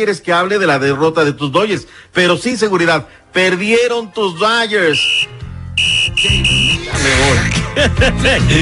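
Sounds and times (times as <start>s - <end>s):
speech: 0.0s - 8.6s
loud high buzzer or horn blasts: 5.0s - 7.2s
people talking and laughing: 6.5s - 8.6s.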